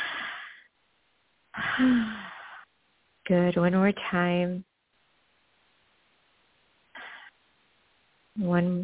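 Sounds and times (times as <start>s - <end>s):
deep breaths in and out during a guided breathing exercise: 0.0s - 0.7s, 1.5s - 2.7s, 6.9s - 7.4s
speech: 1.8s - 2.2s, 3.3s - 4.7s, 8.4s - 8.8s.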